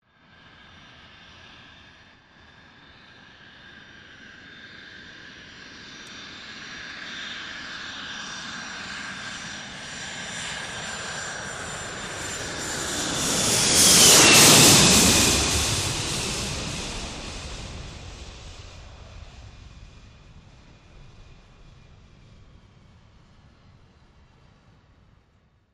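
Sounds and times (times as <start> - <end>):
large jet passing low over land: 4.0 - 23.8.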